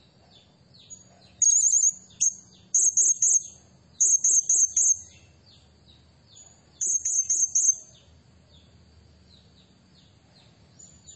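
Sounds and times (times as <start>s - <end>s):
soft chirping: 0.0s - 11.1s
Blue-crowned hanging parrot shrill buzzy trills: 1.4s - 5.0s.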